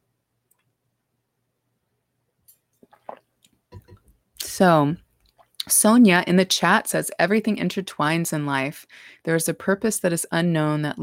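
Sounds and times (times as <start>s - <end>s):
person sipping water: 2.6s - 4.0s
person swallowing water: 2.8s - 4.1s
speech: 4.6s - 5.0s, 5.7s - 11.0s.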